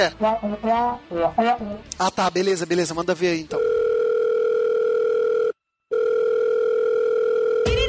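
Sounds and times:
speech: 0:00.0 - 0:03.8
telephone dial tone before a call: 0:03.6 - 0:07.7.

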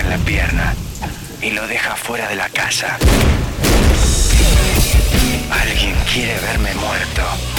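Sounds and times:
speech: 0:00.2 - 0:04.8, 0:05.5 - 0:07.5
loud gunshot with ringing, whining tail: 0:03.0 - 0:05.7.

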